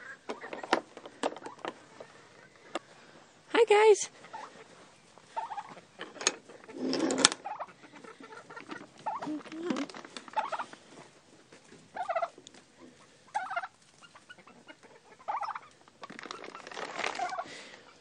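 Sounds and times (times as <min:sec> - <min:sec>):
chickens clucking and squawking in a coop: 0:00.0 - 0:03.5, 0:04.1 - 0:17.9
speech: 0:03.7 - 0:04.2.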